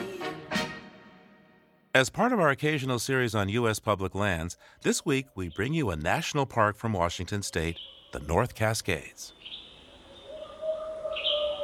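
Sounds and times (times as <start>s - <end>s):
speech: 2.0s - 9.6s
chorus of other birds with tonal calls and chirps: 3.1s - 11.6s
owl calling: 7.1s - 11.6s.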